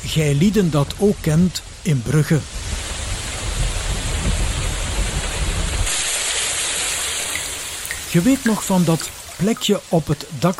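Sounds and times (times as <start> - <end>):
rain falling: 0.0 - 10.5
speech: 0.1 - 2.6, 8.1 - 10.5
deep rolling thunder: 1.2 - 9.1.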